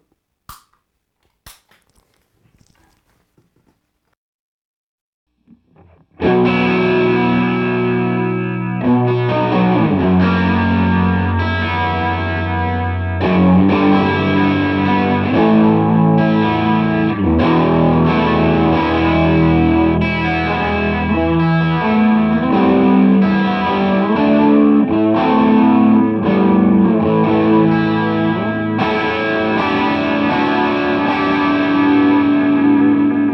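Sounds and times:
electric guitar through chorus effect and distortion pedal playing distorted chords: 0:05.5 - 0:33.3.

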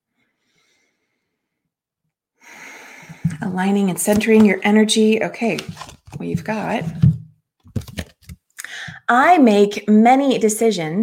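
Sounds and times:
slow deep breath in: 0:00.2 - 0:01.7, 0:02.4 - 0:03.3
speech: 0:03.5 - 0:07.0, 0:09.1 - 0:11.0.

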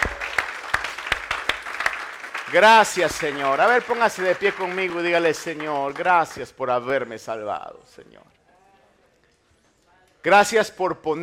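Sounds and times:
congregation applauding at a church worship service: 0:00.0 - 0:07.1
speech: 0:02.5 - 0:08.4, 0:10.2 - 0:11.2.

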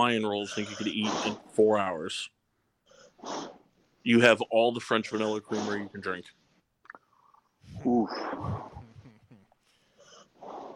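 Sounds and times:
speech: 0:00.0 - 0:02.4, 0:03.2 - 0:06.4, 0:07.7 - 0:08.7
sleeping dog breathing with wheezy snorts: 0:00.4 - 0:01.6, 0:02.8 - 0:03.7, 0:04.9 - 0:06.1, 0:09.8 - 0:10.7.

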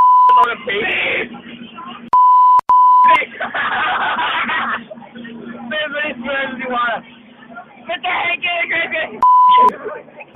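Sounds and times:
censor bleeps: 0:00.0 - 0:00.5, 0:02.1 - 0:03.2, 0:09.2 - 0:09.7
speech: 0:00.4 - 0:01.6, 0:05.7 - 0:07.1, 0:07.9 - 0:10.1
laughter: 0:03.0 - 0:05.6, 0:09.5 - 0:10.3.

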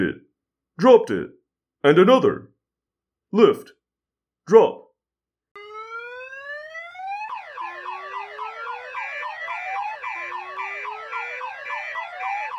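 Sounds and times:
speech: 0:00.8 - 0:02.5, 0:03.3 - 0:03.8, 0:04.5 - 0:04.8
car alarm whooping, chirping and wailing: 0:05.6 - 0:12.5.

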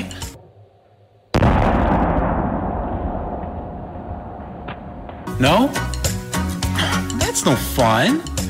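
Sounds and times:
explosion of pumpkins being blown up: 0:01.3 - 0:06.1
speech: 0:05.4 - 0:06.0, 0:07.4 - 0:08.4.

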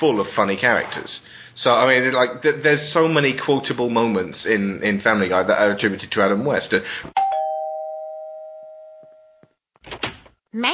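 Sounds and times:
speech: 0:00.0 - 0:07.2, 0:10.5 - 0:10.7
doorbell chime: 0:07.2 - 0:09.4.

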